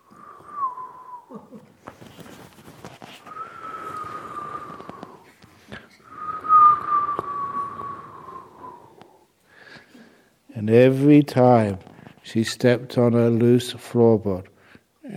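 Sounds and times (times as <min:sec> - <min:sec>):
wind whistling through a narrow glassless ventilation slit in an open window: 0:00.0 - 0:01.3, 0:02.3 - 0:05.4, 0:06.0 - 0:09.2
speech: 0:10.6 - 0:14.5.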